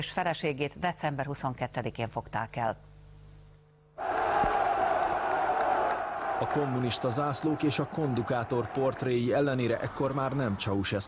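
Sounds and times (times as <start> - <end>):
speech: 0.0 - 2.9, 6.4 - 11.0
large protest crowd in Romania shouting and booing: 4.0 - 11.0.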